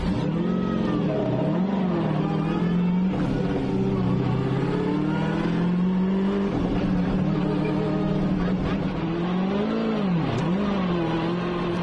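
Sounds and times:
off-road buggy engine revving: 0.0s - 11.8s.

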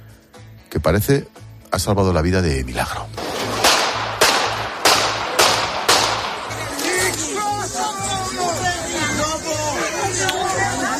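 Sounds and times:
speech: 0.7s - 3.6s
gunshots fired in an assassination attempt: 3.2s - 7.2s
crowd of people shouting and talking in alarm: 6.4s - 10.9s.

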